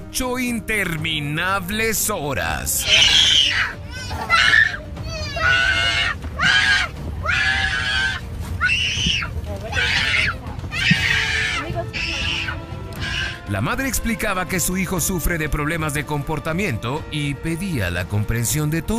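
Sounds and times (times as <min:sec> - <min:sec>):
speech: 0:00.1 - 0:04.8, 0:13.5 - 0:18.9
toddler screaming and wailing on a plane: 0:02.8 - 0:13.5.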